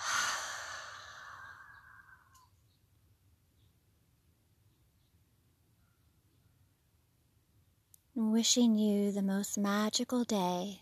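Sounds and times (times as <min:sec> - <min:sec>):
deep exhale through the open mouth during a guided breathing exercise: 0:00.0 - 0:02.3
speech: 0:08.2 - 0:10.8.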